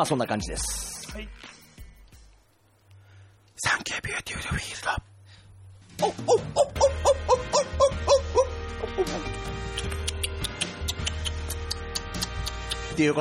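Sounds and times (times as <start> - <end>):
speech: 0.0 - 1.6, 3.6 - 5.1, 6.0 - 6.9, 13.0 - 13.1
sparrow chirping: 6.0 - 11.5
sharp clicking peeps: 8.9 - 12.9.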